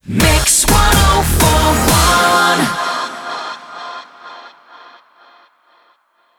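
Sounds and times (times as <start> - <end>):
rapid fire music loop: 0.1 - 2.8.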